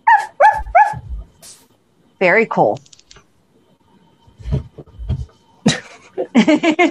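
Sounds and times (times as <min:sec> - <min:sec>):
dog barking: 0:00.0 - 0:01.0
speech: 0:02.2 - 0:02.9, 0:06.5 - 0:06.8.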